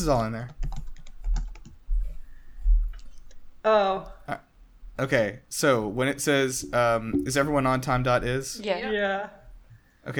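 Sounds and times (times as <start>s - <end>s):
speech: 0.0s - 0.6s, 3.6s - 4.4s, 5.0s - 9.4s
typing on a computer keyboard: 0.4s - 1.8s.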